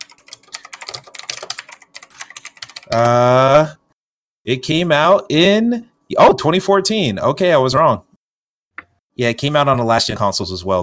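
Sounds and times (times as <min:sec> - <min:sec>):
typing on a clicky computer keyboard: 0:00.0 - 0:03.2
speech: 0:02.9 - 0:03.7, 0:04.5 - 0:08.1, 0:09.2 - 0:10.8.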